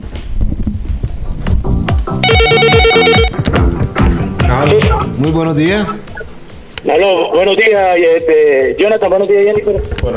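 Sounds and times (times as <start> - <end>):
low rhythmic background: 0.0 - 10.1
electronic telephone ring for an incoming call: 2.2 - 3.4
speech: 5.2 - 6.0, 6.9 - 10.1.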